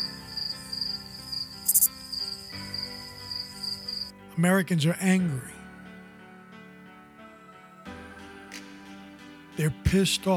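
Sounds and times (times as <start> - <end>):
crickets chirping: 0.0 - 4.1
speech: 4.4 - 5.5, 9.6 - 10.3.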